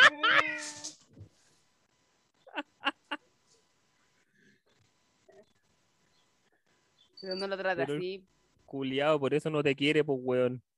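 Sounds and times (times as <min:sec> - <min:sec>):
pet cat meowing: 0:00.2 - 0:00.9
speech: 0:07.2 - 0:10.7.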